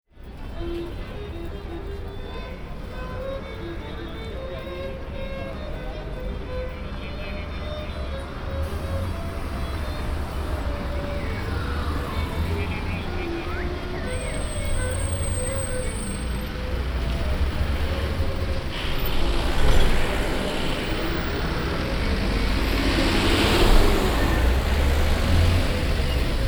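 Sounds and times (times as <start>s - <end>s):
violinist playing: 0.4s - 26.4s.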